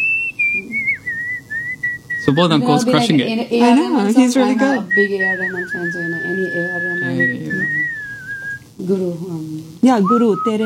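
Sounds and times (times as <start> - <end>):
person whistling a wavering melody: 0.0 - 2.6, 4.6 - 8.6, 10.0 - 10.6
voices murmuring softly: 0.0 - 10.6
speech: 2.3 - 7.9, 8.8 - 10.6.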